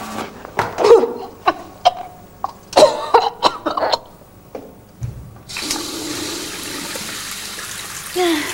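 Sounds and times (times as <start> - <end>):
person vomiting into a bathroom sink: 0.8 - 4.2
running water in a bathroom sink: 5.5 - 8.5.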